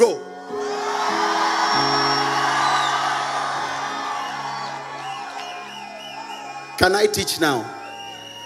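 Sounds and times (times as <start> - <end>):
church congregation shouting together: 0.3 - 6.8
church congregation whooping: 0.3 - 8.4
speech: 6.8 - 7.8.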